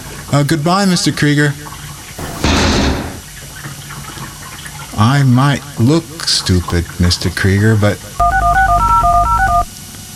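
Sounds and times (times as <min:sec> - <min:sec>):
speech: 0:00.3 - 0:01.7, 0:05.0 - 0:08.3
touch-tone beeps of a telephone number being dialed: 0:08.2 - 0:09.7.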